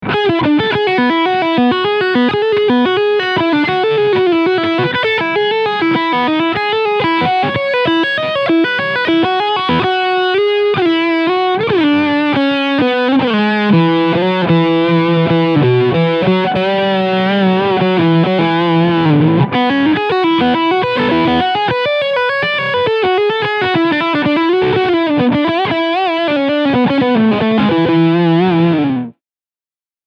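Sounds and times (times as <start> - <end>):
electric guitar lead sound on bridge pickup: 0.0 - 29.2.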